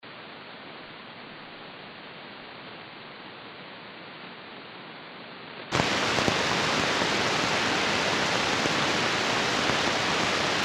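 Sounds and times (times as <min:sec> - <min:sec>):
radio static on a free frequency: 0:05.7 - 0:10.6.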